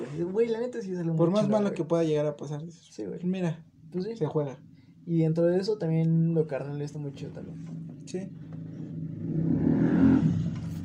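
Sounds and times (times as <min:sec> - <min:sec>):
speech: 0:00.0 - 0:08.4
motorcycle engine passing by outside: 0:07.1 - 0:10.8.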